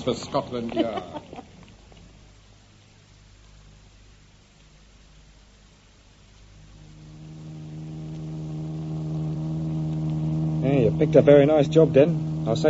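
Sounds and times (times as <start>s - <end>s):
laughter: 0.0s - 1.6s
speech: 0.0s - 1.6s, 10.9s - 12.6s
stolen car engine revving and accelerating: 6.6s - 12.6s.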